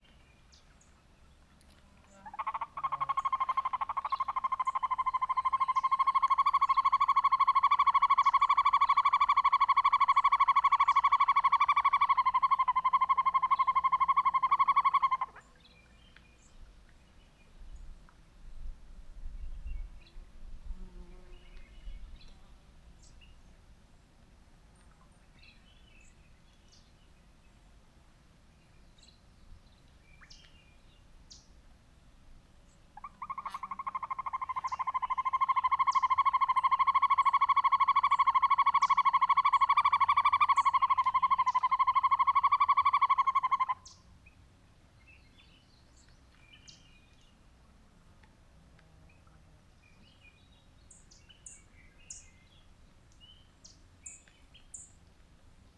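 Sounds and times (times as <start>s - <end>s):
male American Hawk Owl hooting: 2.2s - 15.4s, 33.0s - 43.9s.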